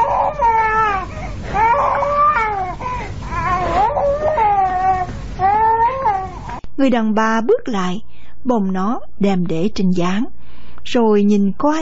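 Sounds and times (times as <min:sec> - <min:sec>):
small boy crying: 0:00.0 - 0:06.6
speech: 0:06.8 - 0:11.8.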